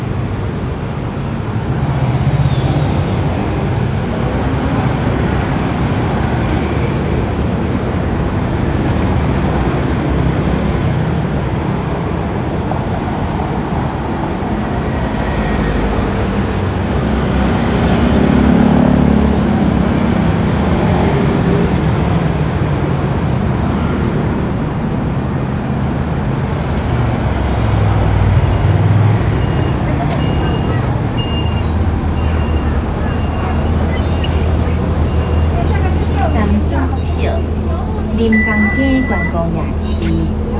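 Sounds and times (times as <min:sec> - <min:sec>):
bus engine rumble: 0:00.0 - 0:40.5
faint indistinct voices inside a bus: 0:31.9 - 0:40.5.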